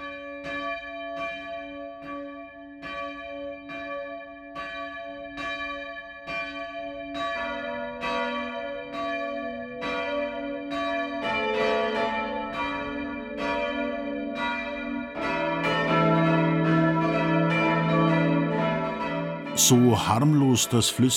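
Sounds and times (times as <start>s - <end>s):
church bells ringing the midday chime in Heustreu, Lower Franconia, Germany: 0.0s - 21.1s
speech: 19.7s - 21.1s.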